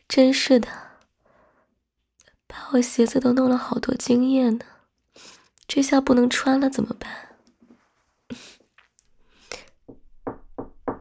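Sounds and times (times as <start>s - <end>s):
speech: 0.1s - 0.8s, 2.5s - 7.3s
sharp knocks on a door: 9.8s - 10.9s.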